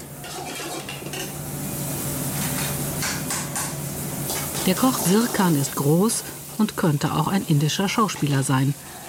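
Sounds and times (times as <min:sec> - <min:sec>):
sizzling in a small very hot restaurant kitchen cooking curries: 0:00.0 - 0:09.0
clatter of dishes pots and pans in a small hot restaurant kitchen: 0:00.2 - 0:01.4, 0:02.4 - 0:04.7
speech: 0:04.7 - 0:09.0.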